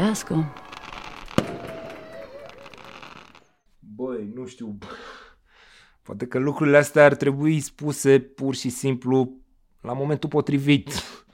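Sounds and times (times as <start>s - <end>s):
firecracker bang outside: 0.0s - 3.6s
speech: 0.1s - 0.6s, 4.5s - 5.2s, 6.1s - 11.2s.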